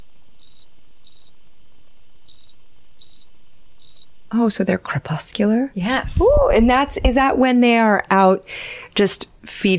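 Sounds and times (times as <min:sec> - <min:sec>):
cricket chirping: 0:00.0 - 0:04.4
faint high hum: 0:00.0 - 0:09.7
speech: 0:04.3 - 0:09.7.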